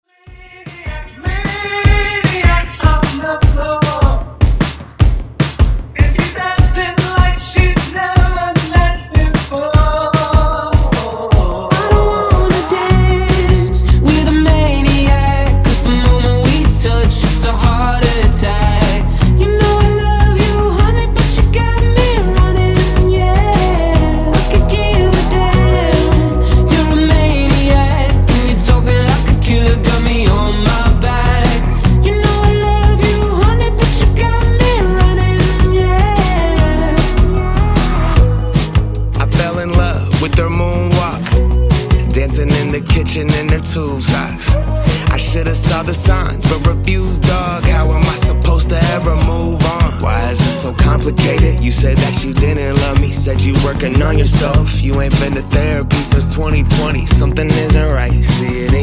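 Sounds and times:
acapella vocal hook: 0.0 - 4.6, 5.9 - 58.8.

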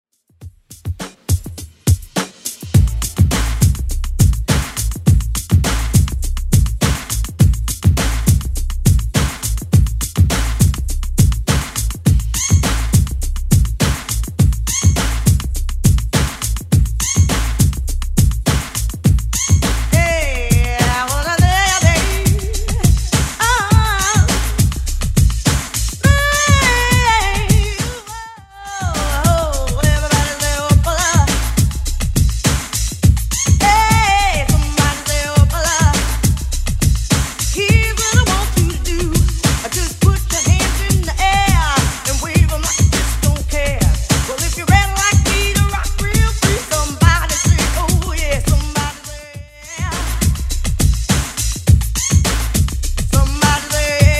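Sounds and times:
90s drum machine beat at 103 bpm: 0.3 - 54.1.

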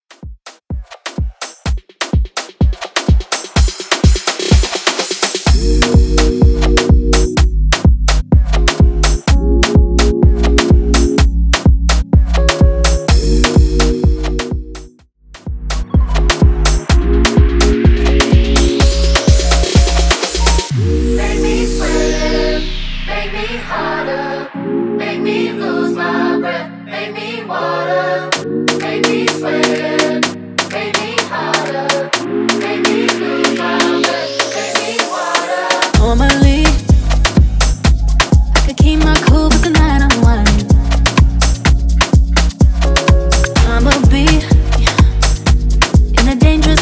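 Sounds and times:
afro house remix: 0.2 - 26.2, 27.6 - 46.8.

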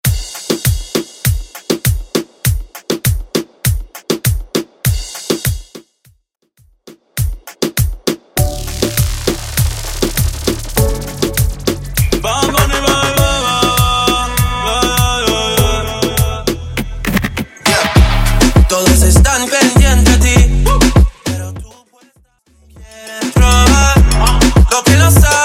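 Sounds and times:
clean moombahton quick mix: 0.0 - 6.0, 6.6 - 25.4.

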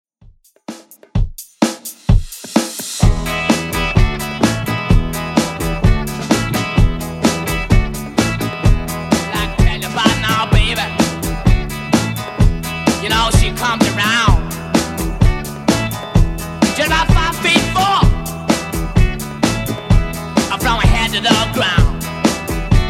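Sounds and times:
60s-style electronic music track at 128 bpm: 1.4 - 22.8.

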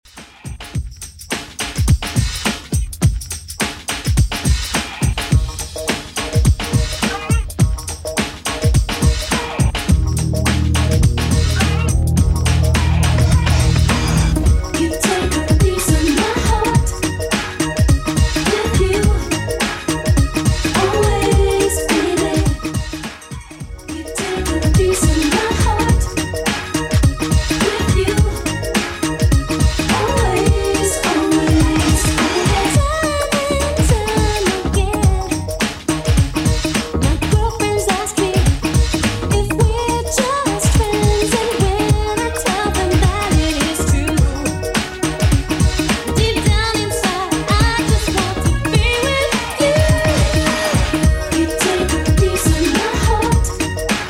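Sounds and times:
90s drum beat: 0.1 - 54.0.

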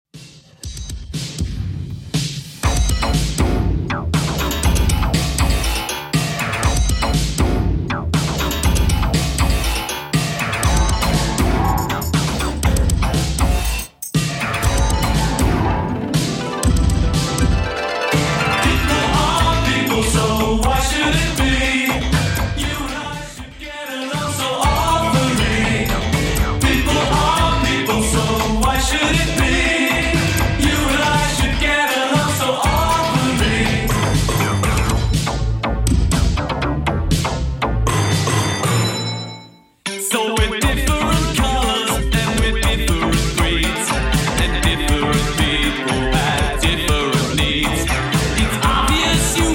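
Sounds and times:
80s drum machine beat: 0.1 - 38.6, 40.3 - 49.5.

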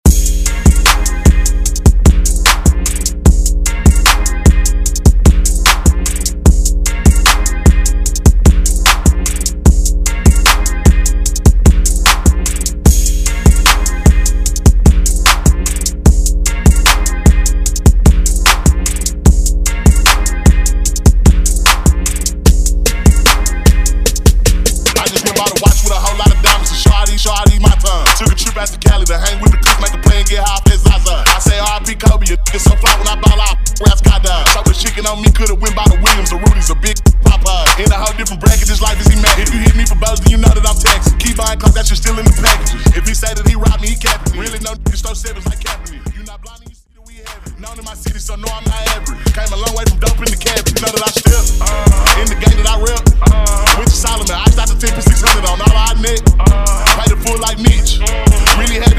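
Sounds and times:
hip hop drum beat: 0.0 - 58.9.

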